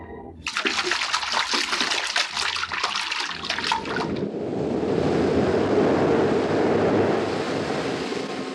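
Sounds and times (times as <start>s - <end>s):
splashing and churning water as a person throws himself into dark water: 0.5s - 4.3s
underwater rushing wash of diving person: 0.5s - 8.4s.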